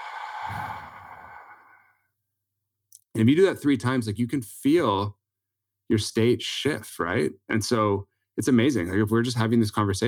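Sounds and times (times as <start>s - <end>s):
long slow breathy exhale during a relaxation breathing exercise: 0.0s - 1.9s
speech: 3.2s - 5.2s, 5.9s - 10.0s.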